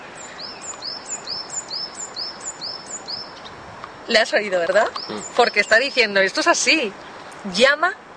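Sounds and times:
soft outdoor hiss: 0:00.0 - 0:08.1
small bird chirping: 0:00.2 - 0:04.2, 0:04.8 - 0:07.2
speech: 0:04.1 - 0:08.0.

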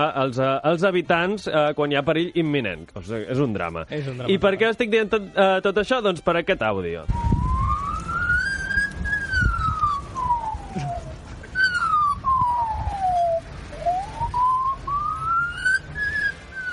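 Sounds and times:
speech: 0:00.0 - 0:07.4
low rumble: 0:07.1 - 0:16.7
Australian magpie mimicking a fire alarm: 0:07.3 - 0:16.7.

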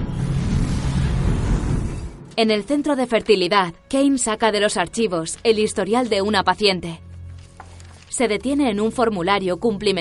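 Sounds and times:
flying motorbike roaring whoosh entering a portal from a rooftop: 0:00.1 - 0:02.2
speech: 0:02.4 - 0:07.1, 0:08.2 - 0:09.9.

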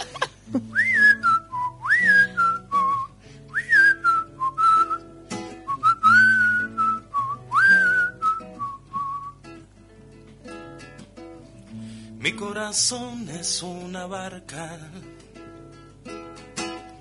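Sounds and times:
laughter: 0:00.0 - 0:00.8
soft steady musical backing: 0:00.0 - 0:17.0
speech: 0:00.5 - 0:00.8, 0:12.5 - 0:15.2
person whistling a melodic tune: 0:00.7 - 0:05.1, 0:05.7 - 0:09.5.

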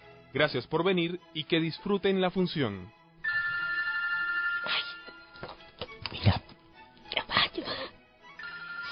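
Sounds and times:
speech: 0:00.4 - 0:03.0
cell phone ringing in a theater: 0:03.2 - 0:05.5, 0:08.4 - 0:08.9.

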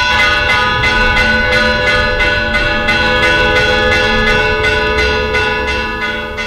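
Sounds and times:
convent church bells tolling an alarm: 0:00.0 - 0:06.4.

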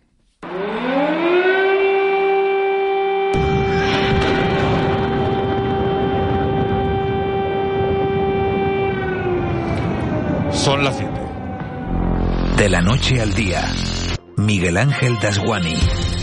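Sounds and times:
civil defense siren wailing: 0:00.4 - 0:16.0
rumbling background: 0:03.4 - 0:14.2
speech: 0:10.8 - 0:11.1, 0:12.6 - 0:16.1.

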